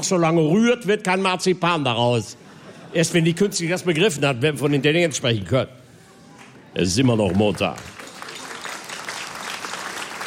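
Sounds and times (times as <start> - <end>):
speech: 0.0 - 5.8, 6.8 - 8.0
audience applause: 7.0 - 10.2.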